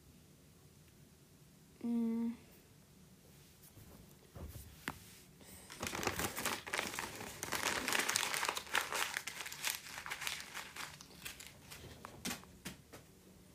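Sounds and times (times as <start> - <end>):
sheet of paper crumpled and tossed aside: 5.6 - 12.4.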